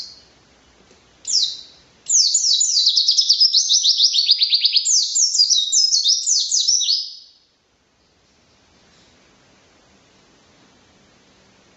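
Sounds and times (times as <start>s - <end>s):
white-eye singing high descending chirps and twittered phrases: 1.2s - 7.4s.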